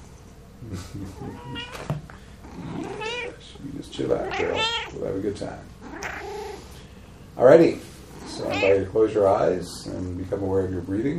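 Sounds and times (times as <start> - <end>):
speech: 0.7 - 5.8, 7.4 - 11.1
black cat meowing softly: 1.2 - 3.4, 4.1 - 5.0, 5.8 - 6.6, 8.2 - 8.9.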